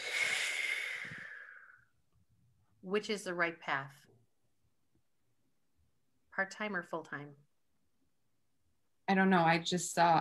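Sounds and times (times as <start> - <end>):
person exhaling a deep breath: 0.0 - 1.9
speech: 2.8 - 4.1, 6.4 - 7.5, 9.1 - 10.1.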